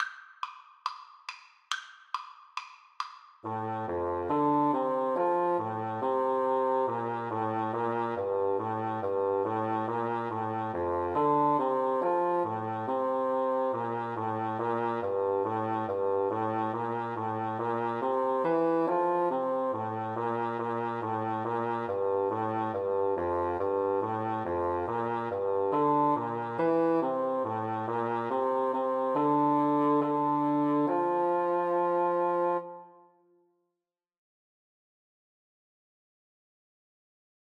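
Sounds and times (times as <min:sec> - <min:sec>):
bassoon duet: 0:03.4 - 0:33.2.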